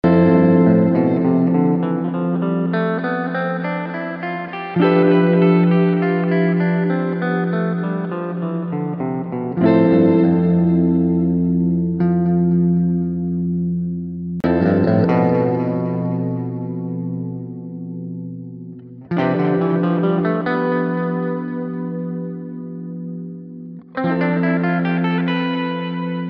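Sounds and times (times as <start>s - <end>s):
melody in the Lydian mode on F: 0.0s - 26.2s.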